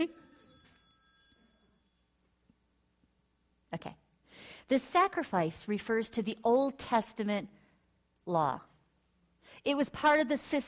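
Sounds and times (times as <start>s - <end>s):
speech: 0.0s - 0.2s, 3.7s - 7.6s, 8.2s - 8.7s, 9.6s - 10.6s
telephone ringing: 0.0s - 2.1s.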